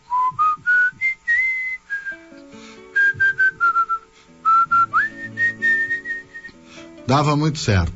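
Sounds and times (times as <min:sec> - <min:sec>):
person whistling a folk melody: 0:00.0 - 0:06.6
soft low instrumental accompaniment: 0:01.8 - 0:07.9
speech: 0:07.1 - 0:07.9.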